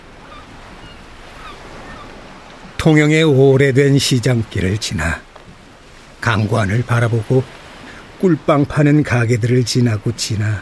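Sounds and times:
gusty wind at Gangguan harbor in Tongyeong, South Korea: 0:00.0 - 0:09.6
waves in Gangguan harbor in Tongyeong, South Korea: 0:00.0 - 0:10.6
faint gull calls above the surf: 0:00.1 - 0:02.2
speech: 0:02.8 - 0:05.3, 0:06.2 - 0:07.6, 0:08.2 - 0:10.6.

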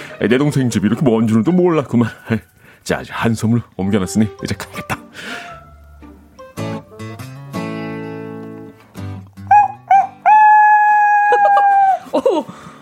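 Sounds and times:
speech: 0:00.2 - 0:05.5
rooster crowing: 0:09.5 - 0:12.1
laughter: 0:11.0 - 0:12.7.

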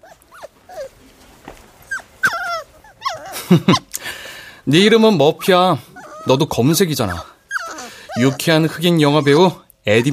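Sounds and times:
black mixed-breed puppy whimpering and whining: 0:00.0 - 0:01.0, 0:01.8 - 0:04.0, 0:05.2 - 0:10.1
speech: 0:03.5 - 0:03.9, 0:04.7 - 0:07.3, 0:08.2 - 0:10.1.

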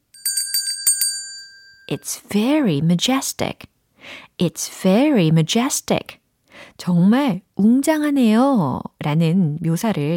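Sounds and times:
bright ding-dong chime of struck bell tones for a correct answer: 0:00.2 - 0:02.0
speech: 0:01.9 - 0:10.1.

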